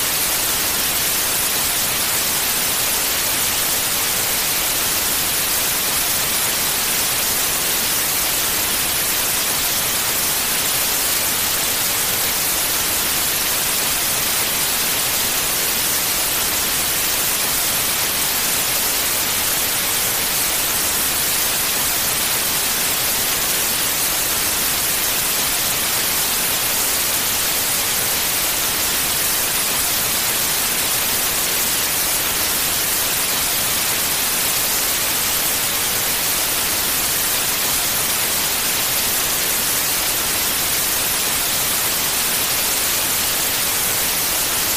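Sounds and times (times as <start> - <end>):
TV static hissing: 0.0 - 44.7.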